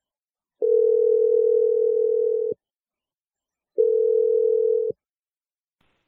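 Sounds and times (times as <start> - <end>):
phone line ringing tones: 0.6 - 2.6, 3.8 - 5.0.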